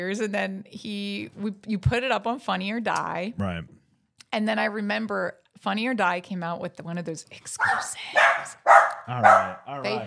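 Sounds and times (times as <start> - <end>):
speech: 0.0 - 10.0
dogs barking: 7.6 - 10.0.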